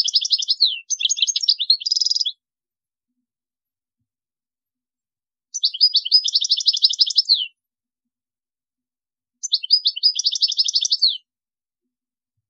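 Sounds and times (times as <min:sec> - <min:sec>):
European goldfinch twittering song: 0:00.0 - 0:02.4, 0:05.5 - 0:07.6, 0:09.4 - 0:11.3.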